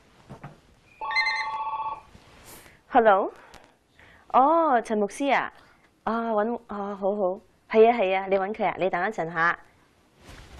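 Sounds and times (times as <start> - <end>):
telephone ringing with a warbling electronic tone: 1.0 - 2.1
speech: 3.0 - 3.4, 4.3 - 9.7.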